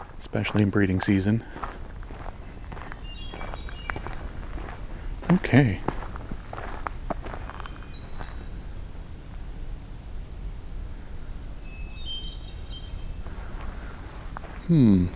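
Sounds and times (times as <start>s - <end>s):
crunching footsteps walking outdoors: 0.0s - 8.6s, 13.2s - 15.1s
speech: 0.3s - 1.8s, 5.3s - 5.9s, 14.7s - 15.1s
faint high bird chirps: 1.4s - 10.0s, 10.8s - 15.1s.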